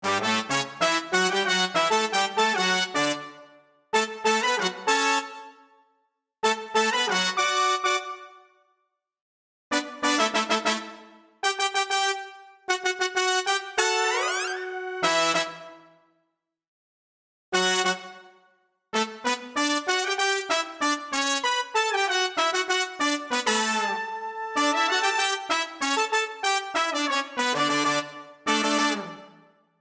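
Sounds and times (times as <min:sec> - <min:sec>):
MODX synthesizer brass sound: 0:00.0 - 0:05.6, 0:06.4 - 0:08.4, 0:09.7 - 0:15.9, 0:17.6 - 0:18.3, 0:19.0 - 0:29.5.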